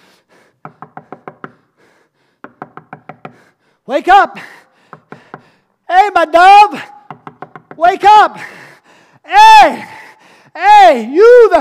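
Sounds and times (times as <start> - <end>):
firm knocking on a door: 0.6 - 1.6, 2.4 - 3.4, 7.1 - 7.8
speech: 3.9 - 4.6, 6.1 - 6.9, 7.8 - 8.6, 9.3 - 10.0, 10.6 - 11.5.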